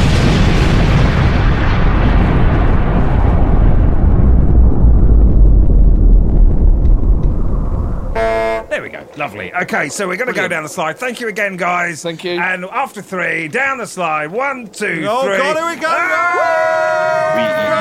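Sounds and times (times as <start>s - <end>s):
atom bomb explosion sound effect: 0.0s - 8.8s
speech: 9.2s - 17.7s.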